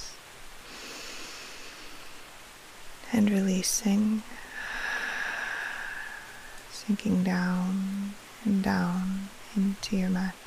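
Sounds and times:
deep breath in through the nose during a guided sleep meditation: 0.6s - 2.2s, 4.3s - 6.6s
speech: 3.1s - 4.4s, 6.9s - 10.4s.

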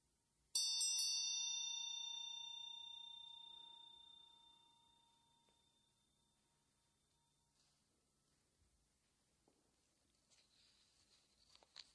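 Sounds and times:
single bell struck once: 0.6s - 6.4s.

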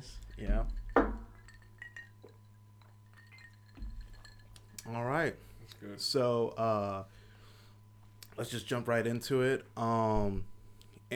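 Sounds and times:
low steady hum: 0.0s - 11.1s
glasses clinking together in a toast: 0.2s - 4.9s
speech: 4.9s - 7.2s, 8.4s - 10.5s.

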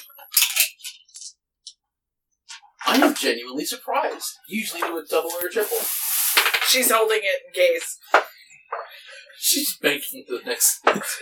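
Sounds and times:
speech: 2.9s - 6.0s, 6.7s - 8.3s, 9.5s - 11.2s
dice clattering across a hard tabletop during a roleplaying game: 5.3s - 6.9s.

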